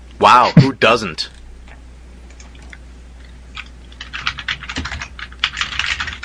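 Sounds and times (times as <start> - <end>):
speech: 0.2 - 1.4
typing on a computer keyboard: 3.6 - 6.2.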